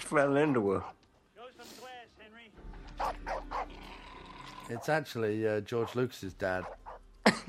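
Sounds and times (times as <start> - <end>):
speech: 0.1 - 1.0, 4.7 - 7.4
dog barking: 3.0 - 3.9, 6.6 - 7.0.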